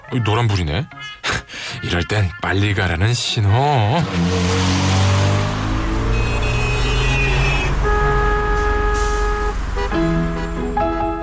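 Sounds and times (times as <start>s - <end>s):
speech: 0.1s - 1.2s, 1.8s - 5.0s
heavy road traffic rumbling at a busy intersection: 3.6s - 11.2s
car horns honking at a busy intersection: 4.1s - 11.2s.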